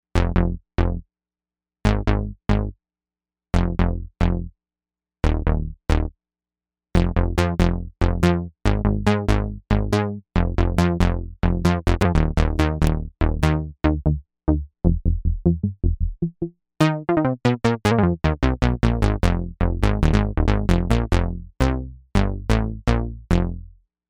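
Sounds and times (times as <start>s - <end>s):
synth bass on a Novation UltraNova: 0.1s - 1.0s, 1.9s - 2.7s, 3.6s - 4.5s, 5.2s - 6.1s, 7.0s - 23.8s.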